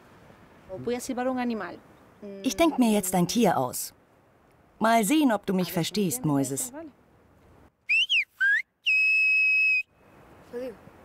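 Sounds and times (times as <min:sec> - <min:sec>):
speech: 0:00.7 - 0:04.0, 0:04.8 - 0:07.0
loud whistled word in Silbo whistled language outdoors: 0:07.9 - 0:10.0.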